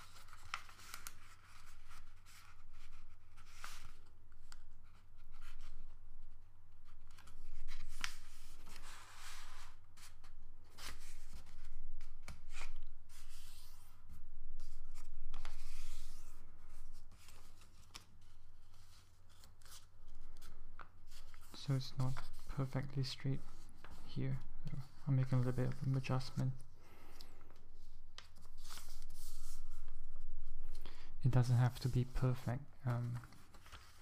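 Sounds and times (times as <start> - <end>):
folded paper sheet rustling and crinkling as it is unfolded: 0.0 - 30.8, 31.4 - 33.9
speech: 21.7 - 23.6, 24.2 - 26.7, 31.2 - 33.4.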